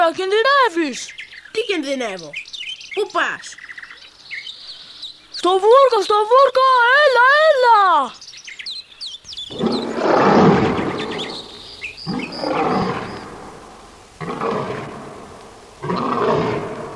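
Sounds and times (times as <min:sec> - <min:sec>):
faint bird chirps: 0:00.0 - 0:14.1
speech: 0:00.1 - 0:03.6, 0:05.4 - 0:08.2, 0:09.5 - 0:10.3
lion roaring: 0:09.5 - 0:16.9.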